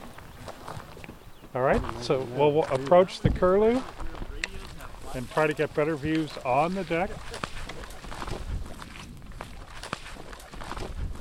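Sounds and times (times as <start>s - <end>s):
footsteps of hikers climbing over slushy, moist tundra: 0.0s - 11.1s
speech: 1.5s - 4.0s, 5.2s - 7.4s.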